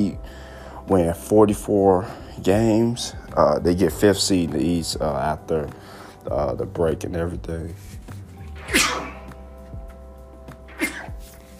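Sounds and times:
speech: 0.0s - 0.3s, 0.9s - 8.0s
person sneezing: 8.6s - 9.3s, 10.7s - 11.2s.

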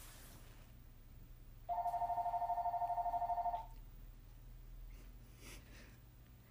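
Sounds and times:
low hum: 0.0s - 6.4s
telephone ringing with a warbling electronic tone: 1.7s - 3.8s.

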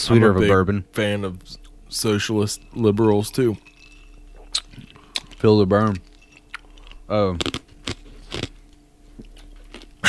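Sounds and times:
speech: 0.0s - 3.7s, 4.8s - 6.1s, 7.1s - 7.6s
ice being chewed into the microphone: 2.6s - 10.0s.

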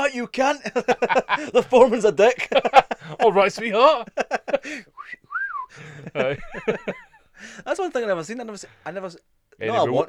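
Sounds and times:
speech: 0.1s - 4.9s, 5.8s - 10.0s
laughter: 0.5s - 4.8s, 5.7s - 7.7s
person giving a two-part wolf whistle: 5.0s - 5.7s.

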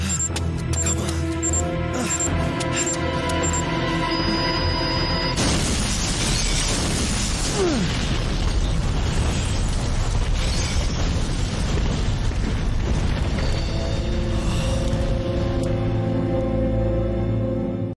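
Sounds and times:
sustained orchestral score from a video game cutscene: 0.0s - 5.4s, 13.7s - 17.9s
crackling debris from an explosion: 5.3s - 16.2s
massive cinematic explosion of a hospital in a video game cutscene: 5.4s - 15.5s.

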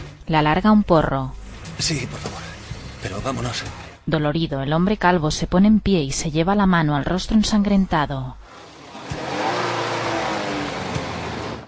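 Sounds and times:
speech: 0.3s - 2.3s, 3.0s - 8.6s
car engine roaring and revving as the car pulls away: 1.3s - 4.1s, 8.4s - 11.6s.

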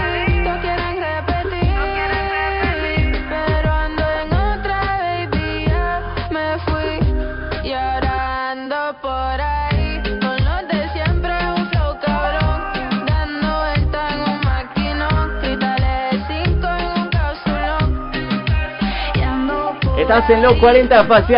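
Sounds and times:
pop song playing on radio: 0.0s - 21.3s
speech: 20.1s - 21.3s.

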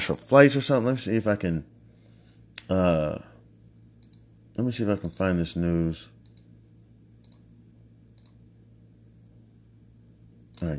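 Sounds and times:
speech: 0.0s - 1.8s, 2.7s - 3.3s, 4.6s - 6.2s, 10.6s - 10.7s
steady low electrical hum: 0.0s - 10.7s
soft computer keyboard clicks: 4.0s - 4.3s, 7.2s - 7.5s, 8.2s - 8.4s.

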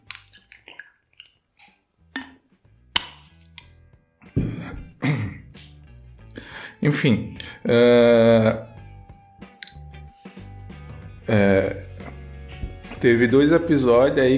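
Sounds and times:
sips and swallows of water: 0.0s - 1.9s
loud rough throat clearing: 4.4s - 5.5s
speech: 6.8s - 8.7s, 11.3s - 11.8s, 13.0s - 14.3s.

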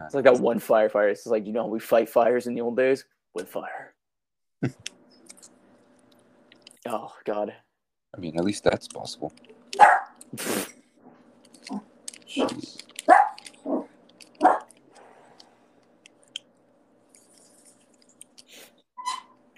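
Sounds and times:
speech: 0.1s - 3.9s, 4.6s - 5.0s, 6.8s - 10.8s, 11.7s - 13.2s
dog barking: 9.8s - 10.2s, 12.4s - 14.7s.

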